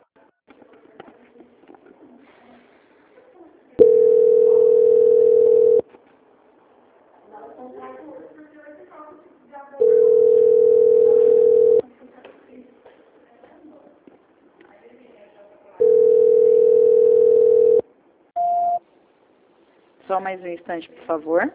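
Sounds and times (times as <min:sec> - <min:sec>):
telephone line tones during a call transfer: 0:03.8 - 0:05.8, 0:09.8 - 0:11.8, 0:15.8 - 0:17.8
short high beep: 0:18.4 - 0:18.8
speech: 0:20.2 - 0:21.5.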